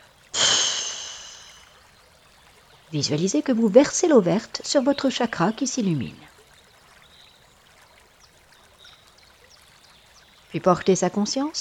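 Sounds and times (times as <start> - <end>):
breathy rush of air during a guided chakra meditation: 0.3 - 1.8
speech: 2.9 - 6.3, 10.5 - 11.5.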